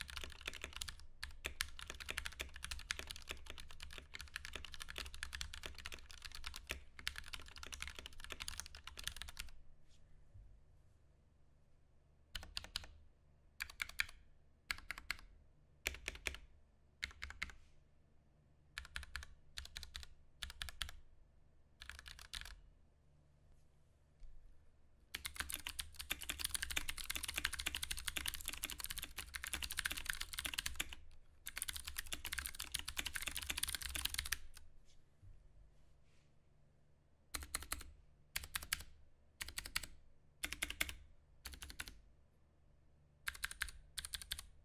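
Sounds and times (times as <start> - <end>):
Ducky One 2 Mini mechanical keyboard typing: 0.0 - 9.5, 12.4 - 13.0, 13.6 - 16.4, 17.0 - 17.6, 18.8 - 21.0, 21.8 - 22.6, 25.1 - 34.6, 37.3 - 42.0, 43.3 - 44.6.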